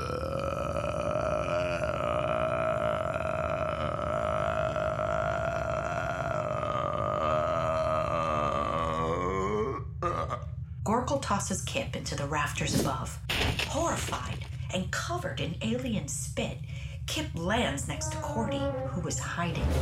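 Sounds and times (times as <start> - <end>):
huge drawn-out burp: 0.0 - 10.4
speech: 11.1 - 19.8.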